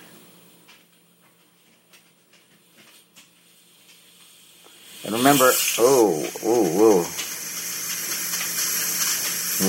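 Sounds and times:
pressure cooker valve releasing steam: 0:03.4 - 0:09.6
speech: 0:05.0 - 0:07.2.

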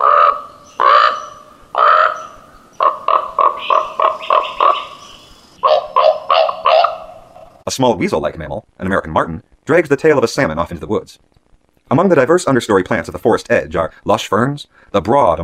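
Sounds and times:
raven croaking along a shoreline: 0:00.0 - 0:07.7
speech: 0:07.8 - 0:11.3, 0:11.9 - 0:15.4.

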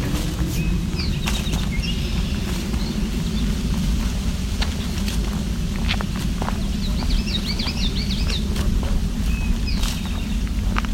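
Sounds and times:
eastern towhee calling: 0:00.0 - 0:03.8, 0:06.7 - 0:10.6
other faint birdsong: 0:00.0 - 0:10.9
steady low rumble of wind: 0:00.0 - 0:10.9.

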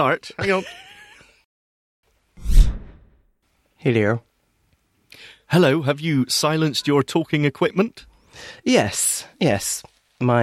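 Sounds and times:
speech: 0:00.0 - 0:00.9, 0:03.8 - 0:04.3, 0:05.1 - 0:10.4
swoosh transition effect: 0:02.4 - 0:03.2.

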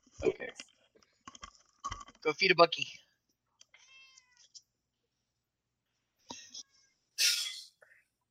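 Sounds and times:
speech: 0:02.2 - 0:03.0
pet cat meowing: 0:03.8 - 0:04.4
pet cat breathy hiss-like burst: 0:07.2 - 0:07.7.

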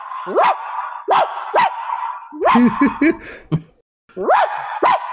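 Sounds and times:
speech: 0:00.3 - 0:01.3, 0:02.5 - 0:04.7
person imitating a dog barking in a very large living room: 0:02.3 - 0:03.6, 0:04.1 - 0:05.0
person laughing: 0:02.4 - 0:03.8.

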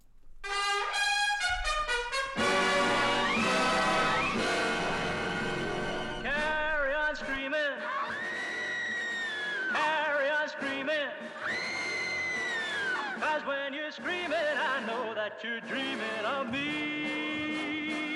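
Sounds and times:
1960s-style pop film theme song: 0:00.5 - 0:18.1
male singer crooning with vibrato: 0:06.1 - 0:08.0, 0:09.7 - 0:11.4, 0:13.1 - 0:18.1.

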